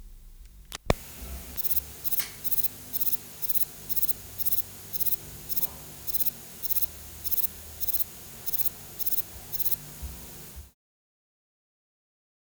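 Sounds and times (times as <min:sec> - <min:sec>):
sharp click: 0:00.7 - 0:09.8
Platycleis albopuntata grisea grey bush-cricket chirping: 0:00.9 - 0:10.7.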